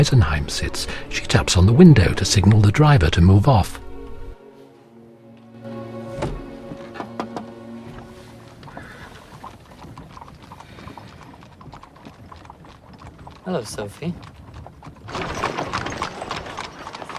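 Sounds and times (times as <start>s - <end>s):
speech: 0.0s - 3.8s, 13.6s - 14.3s
rattle and creak of the carriage's mechanism: 6.2s - 17.1s
horses' hooves clip-clopping as a carriage halts: 6.6s - 17.1s.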